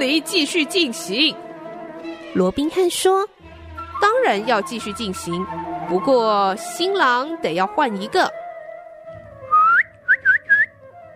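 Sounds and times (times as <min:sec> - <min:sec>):
speech: 0:00.0 - 0:01.5, 0:02.3 - 0:03.4, 0:04.0 - 0:08.4
long rising whistle: 0:09.5 - 0:10.7.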